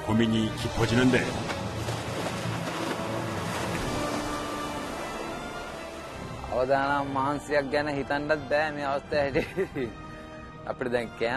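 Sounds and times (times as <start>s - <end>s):
speech: 0.1s - 1.5s, 6.6s - 10.0s, 10.6s - 11.3s
rough high waves surging around a fishing boat: 1.3s - 7.1s.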